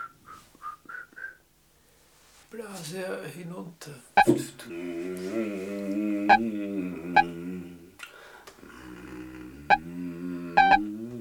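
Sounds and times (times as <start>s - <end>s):
person whistling short clear notes: 0.0s - 1.5s
speech: 2.5s - 7.3s.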